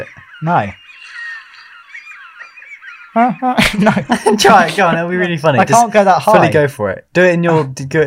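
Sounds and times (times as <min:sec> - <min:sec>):
speech: 0:00.0 - 0:00.8, 0:03.2 - 0:08.0
seagull squawking: 0:00.0 - 0:03.6
laughter: 0:03.2 - 0:06.5.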